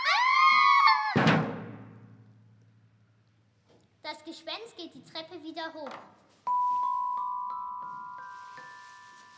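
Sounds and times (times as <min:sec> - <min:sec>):
people screaming in a castle: 0:00.0 - 0:01.3
speech: 0:04.4 - 0:06.2.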